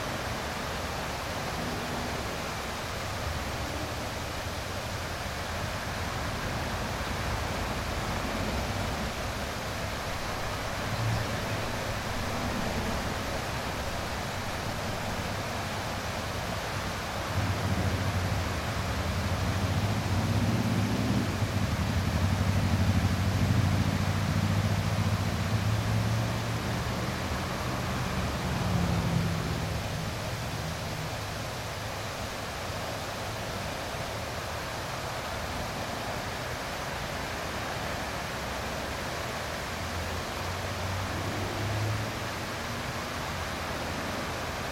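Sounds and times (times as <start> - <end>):
low rumble of highway traffic: 0.0 - 44.6
waterfall: 0.0 - 44.6
heavier vehicle passing on a highway: 6.0 - 31.6, 39.9 - 44.6.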